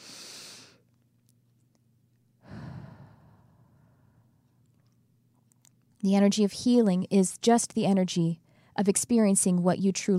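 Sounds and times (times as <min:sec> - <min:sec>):
deep slow breathing: 0:02.4 - 0:04.4
speech: 0:06.0 - 0:10.1.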